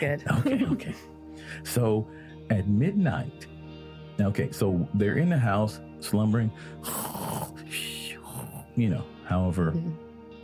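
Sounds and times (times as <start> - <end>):
speech: 0.0 - 3.5, 4.2 - 8.0, 8.8 - 10.0
laughter: 0.3 - 1.0
voice imitating snoring: 6.8 - 8.8.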